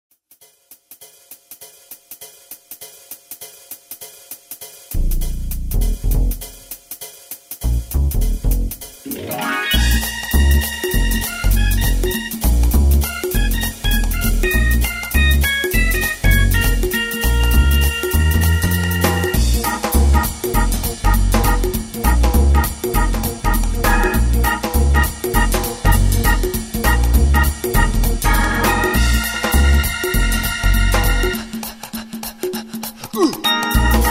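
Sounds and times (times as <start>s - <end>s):
groove organ bass: 5.0s - 6.6s, 7.7s - 31.6s, 33.6s - 34.0s.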